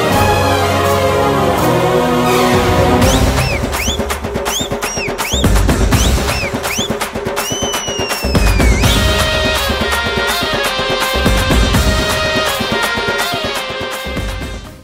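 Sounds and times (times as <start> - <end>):
whistle background music ringtone in Tamil style: 0.1 - 14.4.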